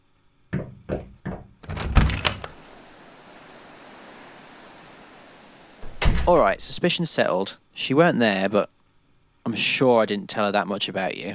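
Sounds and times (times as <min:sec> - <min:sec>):
quiet steady room hiss: 0:00.0 - 0:11.3
wooden door opening and closing: 0:00.6 - 0:02.6, 0:05.8 - 0:06.7
speech: 0:06.3 - 0:08.8, 0:09.4 - 0:11.3.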